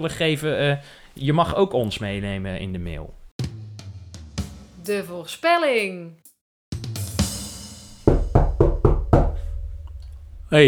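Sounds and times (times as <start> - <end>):
speech: 0.0 - 3.2, 4.8 - 6.3
firm knocking on a door on pakjesavond: 7.9 - 10.6.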